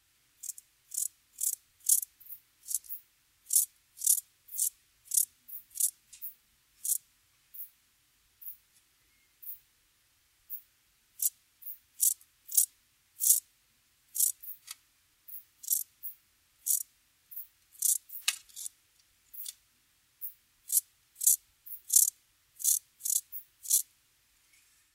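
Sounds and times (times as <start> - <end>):
rufous grasshopper chirping: 0.4 - 7.0, 11.2 - 13.4, 14.1 - 14.6, 15.3 - 18.7, 20.2 - 23.9.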